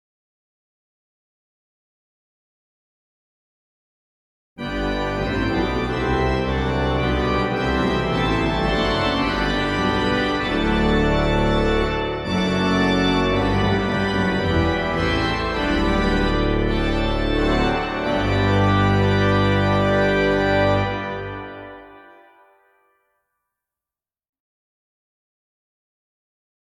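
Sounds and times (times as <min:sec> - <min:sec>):
organ accompaniment: 0:04.6 - 0:22.8.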